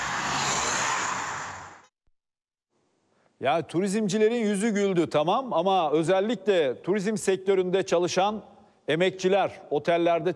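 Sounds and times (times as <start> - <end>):
holiday road traffic roar in a queue at the entrance to Muğla: 0.0 - 1.8
speech: 3.4 - 10.3.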